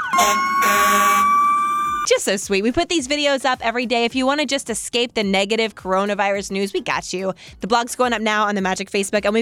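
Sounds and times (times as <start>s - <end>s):
fire department vehicle emergency siren whooping in a neighborhood parade: 0.1s - 2.1s
steady blaring horn-like tone from fire department vehicles: 0.1s - 2.1s
speech: 0.2s - 0.5s, 2.1s - 9.4s.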